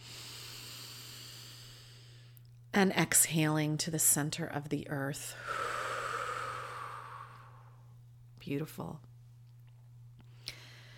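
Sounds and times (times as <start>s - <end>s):
deep inhale during a guided breathing exercise: 0.0s - 2.4s, 5.3s - 7.9s, 10.4s - 10.9s
faint low electrical hum: 0.0s - 10.9s
speech: 2.8s - 5.8s, 8.4s - 9.1s.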